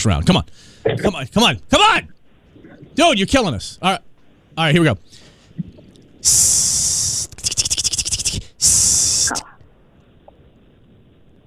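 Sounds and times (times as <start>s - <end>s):
speech: 0.0s - 2.2s, 3.0s - 7.1s, 8.6s - 9.4s
rapid vocal rattling pulses: 5.6s - 9.6s
person imitating a snake hiss with their voice: 6.2s - 9.6s.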